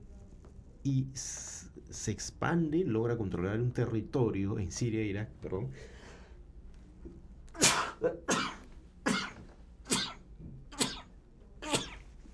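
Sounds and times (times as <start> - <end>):
speech: 0.8 - 6.0
person sneezing: 7.6 - 12.1.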